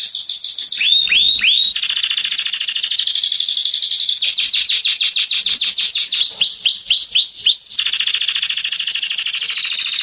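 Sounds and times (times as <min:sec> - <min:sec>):
canary song with trills and swooping notes: 0:00.0 - 0:10.0.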